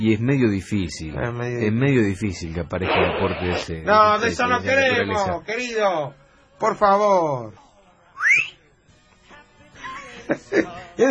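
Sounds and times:
speech: 0:00.0 - 0:07.6, 0:10.3 - 0:11.0
short whistle sweeping upward in pitch: 0:08.2 - 0:08.6.

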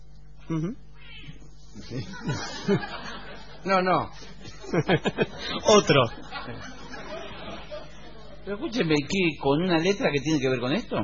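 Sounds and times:
speech: 0:00.5 - 0:00.9, 0:01.8 - 0:06.8, 0:08.4 - 0:11.0
cat meowing: 0:01.0 - 0:01.4
laughter: 0:01.8 - 0:08.5.

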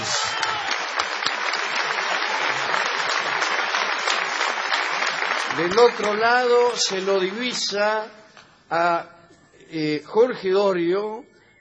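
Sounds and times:
large audience applause: 0:00.0 - 0:07.9
speech: 0:05.6 - 0:11.3.

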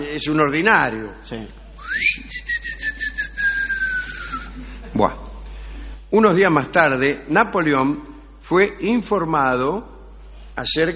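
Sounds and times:
speech: 0:00.2 - 0:02.6, 0:04.9 - 0:05.2, 0:06.1 - 0:09.9, 0:10.6 - 0:10.9
man whistling to call his wife home: 0:01.8 - 0:04.6.

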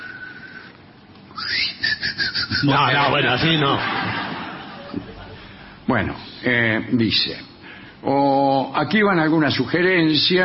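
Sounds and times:
voice imitating whistling heard in night silence: 0:01.3 - 0:02.9
speech: 0:02.6 - 0:04.0, 0:05.9 - 0:10.4
laughter: 0:03.2 - 0:05.6.

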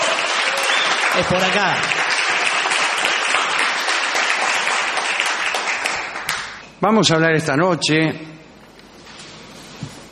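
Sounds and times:
crowd applauding a guest at a small shed-like venue: 0:00.0 - 0:06.6
speech: 0:01.2 - 0:02.1, 0:06.8 - 0:08.4.

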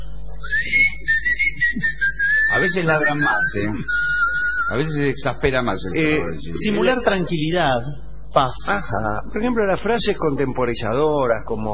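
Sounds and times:
person whistling a short tune: 0:00.4 - 0:04.8
speech: 0:02.6 - 0:04.1, 0:04.7 - 0:11.7.

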